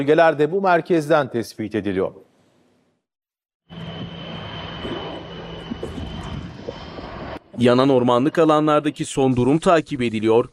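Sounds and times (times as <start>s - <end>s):
speech: 0.0s - 2.2s, 7.6s - 10.5s
firefighting aircraft engine flying over a forest-fire zone: 3.7s - 8.9s.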